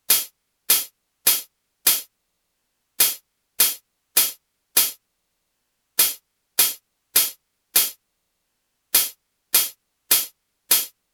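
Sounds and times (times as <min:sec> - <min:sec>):
closed hi-hat: 0:00.0 - 0:02.1, 0:03.0 - 0:05.0, 0:06.0 - 0:08.0, 0:09.0 - 0:11.0.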